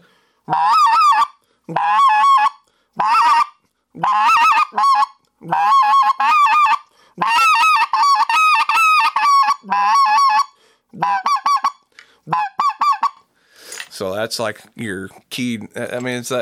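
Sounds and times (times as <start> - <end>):
goose call blown by hand in triple yodels: 0.5 - 13.3
speech: 14.3 - 16.4.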